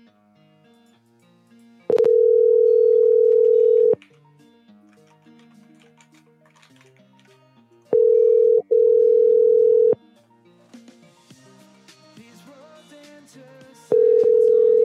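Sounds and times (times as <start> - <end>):
telephone busy signal on a call to a cell phone: 1.9 - 4.0, 8.0 - 10.0, 13.9 - 14.8.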